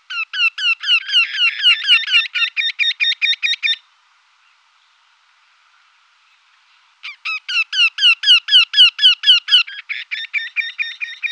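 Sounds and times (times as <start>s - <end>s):
woodpecker song: 0.0s - 3.8s, 6.3s - 11.3s.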